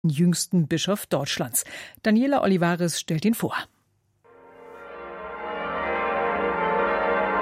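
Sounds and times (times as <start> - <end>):
speech: 0.0 - 3.8
church bells ringing in a continuous peal: 4.3 - 7.4.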